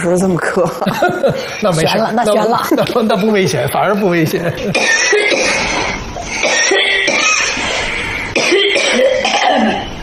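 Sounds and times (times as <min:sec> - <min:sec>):
speech: 0:00.0 - 0:05.4
laughter: 0:00.8 - 0:05.3
person coughing harshly: 0:04.7 - 0:07.6, 0:08.4 - 0:09.8.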